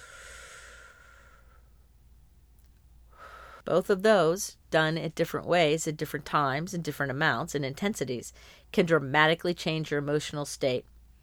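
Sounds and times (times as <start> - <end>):
slow meditation breath: 0.0 - 1.8, 3.1 - 3.7, 8.4 - 8.7
speech: 3.7 - 10.9.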